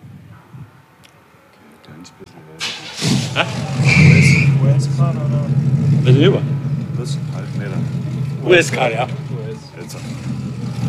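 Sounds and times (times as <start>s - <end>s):
speech: 2.0s - 10.4s
US-made car engine starting and revving while pulling forward: 2.6s - 10.8s.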